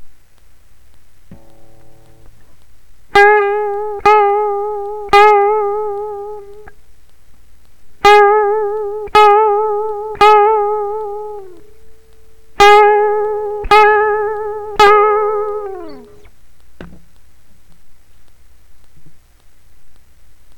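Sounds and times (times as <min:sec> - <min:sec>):
guitar vibrato: 0:01.3 - 0:06.7, 0:08.0 - 0:16.3.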